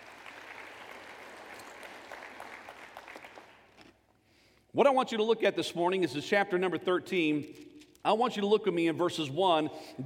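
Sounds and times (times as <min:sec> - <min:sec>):
audience clapping hands in applause: 0:00.0 - 0:03.8
speech: 0:04.8 - 0:10.0.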